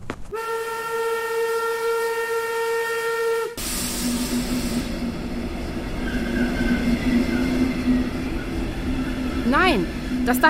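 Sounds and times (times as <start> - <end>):
rumble and hiss of rolling train cars: 0.0 - 10.4
departing train whistle: 0.3 - 5.2, 5.9 - 10.3
speech: 9.7 - 10.4.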